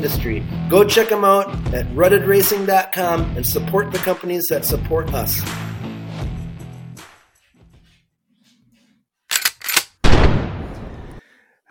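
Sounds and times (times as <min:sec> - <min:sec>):
speech: 0:00.0 - 0:05.7
music: 0:00.0 - 0:08.2
shotgun blast sound effect ending a commercial break: 0:09.7 - 0:11.1.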